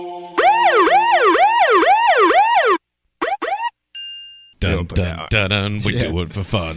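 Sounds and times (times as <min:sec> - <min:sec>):
loud sustained electronic tones in opening bars of a song: 0:00.4 - 0:03.7
rapid swooping siren-like warble: 0:00.4 - 0:03.7
speech: 0:05.4 - 0:06.7.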